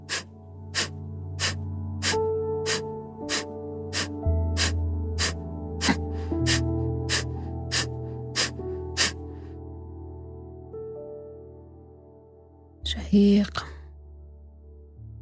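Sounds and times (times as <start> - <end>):
forceful exhalations of a breathing exercise, pushed out by pulling the stomach in: 0.0 - 9.5
sustained musical background: 0.0 - 15.1
speech: 13.1 - 13.7.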